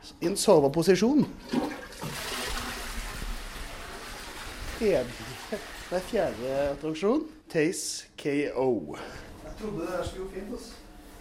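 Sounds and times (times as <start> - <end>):
speech: 0.0 - 1.8, 4.8 - 10.8
toilet flushing: 1.3 - 7.1.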